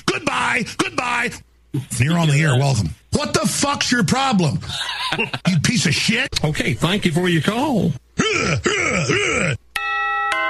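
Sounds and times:
speech: 0:00.2 - 0:09.6
laughter: 0:04.6 - 0:05.6
bell ringing with warbling tones and sustained chimes: 0:09.8 - 0:10.4.

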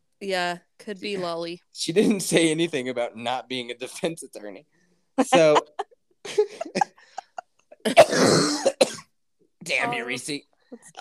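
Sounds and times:
speech: 0:00.2 - 0:05.8, 0:07.8 - 0:08.6, 0:09.7 - 0:11.0
laughter: 0:05.2 - 0:07.8
person coughing into a microphone: 0:07.8 - 0:09.1.

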